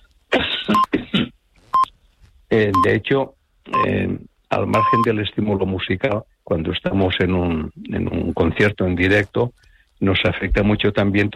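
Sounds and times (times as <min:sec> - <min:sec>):
harsh coughing: 0:00.3 - 0:01.4
speech: 0:02.6 - 0:11.3.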